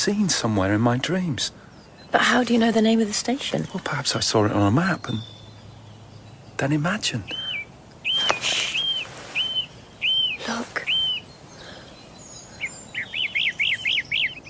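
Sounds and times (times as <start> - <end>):
speech: 0.0 - 5.4, 6.6 - 7.4
birds chirping: 0.0 - 14.4
person whispering: 10.4 - 10.9.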